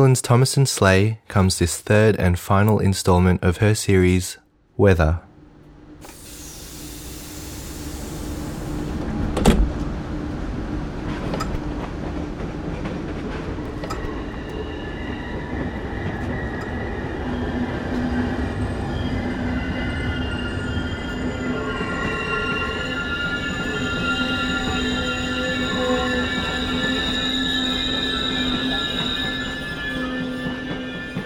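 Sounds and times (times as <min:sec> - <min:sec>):
speech: 0:00.0 - 0:05.3
train wheels squealing and whining: 0:06.0 - 0:09.0, 0:13.7 - 0:31.2
train rolling on rails with a low rumble: 0:06.0 - 0:31.2.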